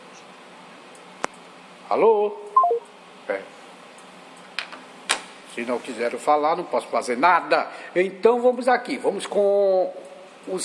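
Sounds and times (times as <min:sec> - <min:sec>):
speech: 0:01.9 - 0:03.6, 0:05.6 - 0:10.6
telephone dialing beeps: 0:02.6 - 0:02.8.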